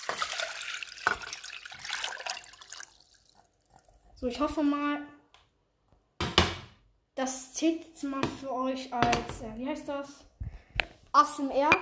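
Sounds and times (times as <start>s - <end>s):
water being poured into a cooking pot: 0.0s - 4.1s
speech: 4.2s - 5.2s, 7.2s - 10.3s, 11.2s - 11.7s.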